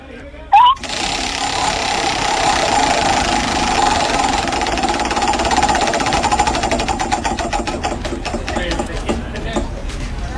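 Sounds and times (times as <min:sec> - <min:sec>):
game show prize wheel spinning with ratcheting clicks: 0:00.6 - 0:09.6.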